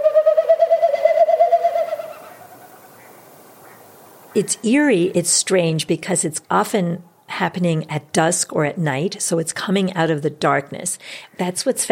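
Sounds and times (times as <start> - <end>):
small bird giving a hollow tremulous call overhead: 0.0 - 4.7
speech: 4.4 - 11.8.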